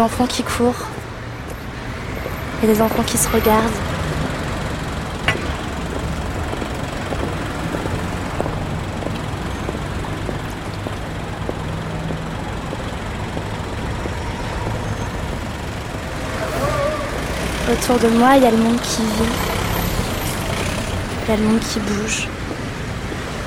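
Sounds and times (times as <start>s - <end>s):
speech: 0.0s - 1.0s, 2.6s - 4.2s, 17.7s - 19.6s, 21.3s - 22.3s
trucks passing at high speed on a boulevard: 0.0s - 23.4s.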